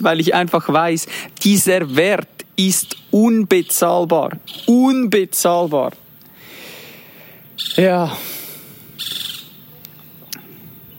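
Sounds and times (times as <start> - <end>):
speech: 0.0 - 6.0, 7.6 - 8.3
bird chirps outdoors: 1.7 - 5.9, 7.5 - 8.0, 9.0 - 10.9
bird trilling outdoors: 2.6 - 5.8, 7.6 - 8.0, 9.0 - 9.7.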